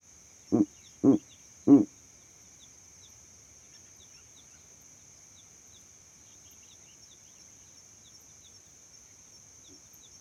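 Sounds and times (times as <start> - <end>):
owl hoots at night: 0.5 - 1.9.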